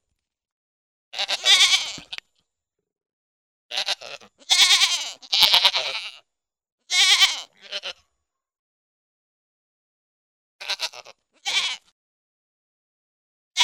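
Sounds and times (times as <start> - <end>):
goat bleating: 1.2 - 2.2, 3.7 - 6.2, 6.9 - 8.0, 10.6 - 11.9.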